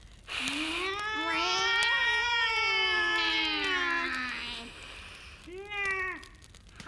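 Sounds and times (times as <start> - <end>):
two huge black cats yowling: 0.5 - 4.6, 5.4 - 6.6.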